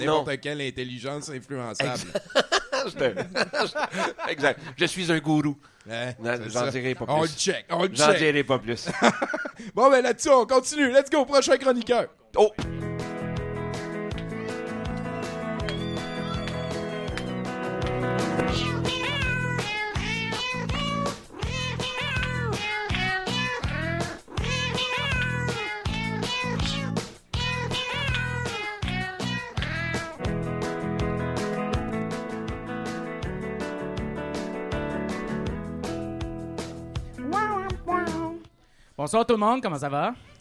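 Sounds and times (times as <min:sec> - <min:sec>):
speech: 0:00.0 - 0:12.8, 0:39.1 - 0:40.3
laughter: 0:01.8 - 0:04.9, 0:08.7 - 0:09.6
musical backing: 0:12.6 - 0:38.5
cat meowing: 0:14.3 - 0:14.7, 0:18.4 - 0:30.2.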